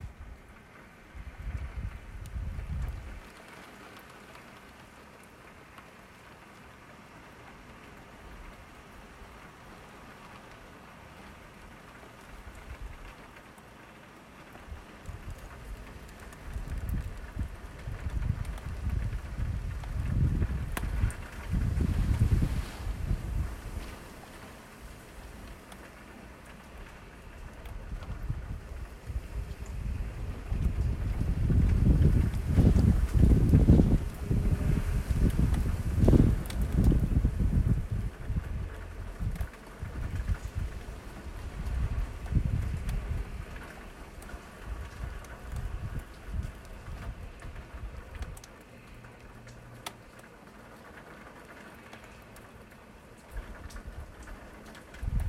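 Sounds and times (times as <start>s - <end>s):
storm: 0.0s - 3.6s, 14.6s - 49.4s, 53.2s - 55.2s.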